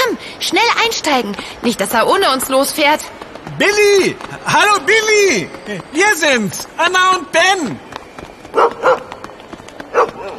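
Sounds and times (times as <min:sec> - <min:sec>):
speech: 0:00.4 - 0:07.9, 0:08.5 - 0:09.0
dog barking: 0:08.6 - 0:09.1, 0:09.9 - 0:10.3.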